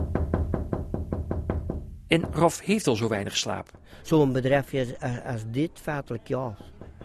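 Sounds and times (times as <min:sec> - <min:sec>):
truck driver knocking on a window: 0:00.0 - 0:03.1, 0:06.5 - 0:07.0
speech: 0:02.1 - 0:06.7.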